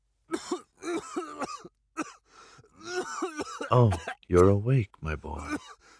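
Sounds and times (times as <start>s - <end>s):
man coughing violently with hacking bursts and gasps: 0.3s - 4.6s, 5.4s - 5.9s
speech: 3.7s - 5.8s.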